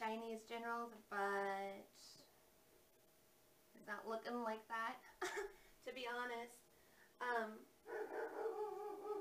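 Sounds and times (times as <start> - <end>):
speech: 0.1 - 2.3, 3.8 - 6.6, 7.2 - 8.7
dog barking: 7.9 - 9.1.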